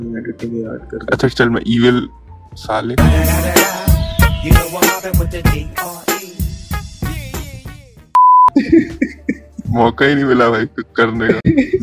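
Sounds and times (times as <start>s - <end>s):
speech: 0.0s - 6.1s, 9.7s - 11.8s
censor bleep over speech: 8.2s - 8.5s
laughter: 8.6s - 9.7s, 11.0s - 11.8s.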